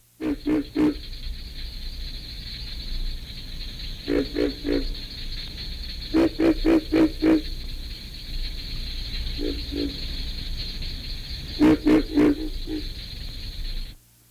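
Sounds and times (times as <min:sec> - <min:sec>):
pig frog: 0:00.2 - 0:14.0.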